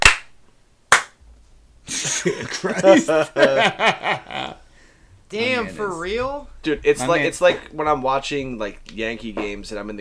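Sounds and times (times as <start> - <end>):
group clapping in unison on a count: 0.0 - 1.2
laughter: 1.9 - 4.6
speech: 2.2 - 4.6, 5.3 - 9.9.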